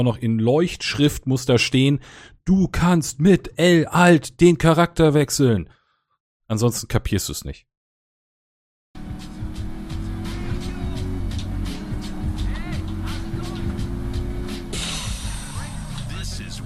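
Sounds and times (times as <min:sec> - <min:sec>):
speech: 0:00.0 - 0:05.8, 0:06.5 - 0:07.7
video game car engine drone: 0:09.0 - 0:16.6.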